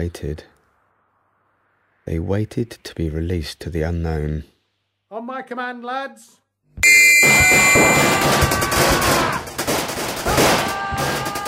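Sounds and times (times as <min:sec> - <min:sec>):
speech: 0:00.0 - 0:00.6, 0:02.1 - 0:04.5, 0:05.3 - 0:09.1
thin high-pitched whistling tones: 0:06.8 - 0:08.3
volley of gunfire: 0:07.3 - 0:11.4.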